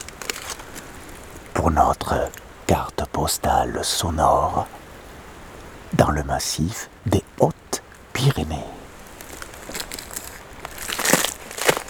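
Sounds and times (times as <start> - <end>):
crunching on an icy road in the Hautes-Pyrénées mountains: 0.0 - 2.5, 8.9 - 11.8
speech: 1.6 - 4.8, 5.9 - 7.5, 8.2 - 8.8.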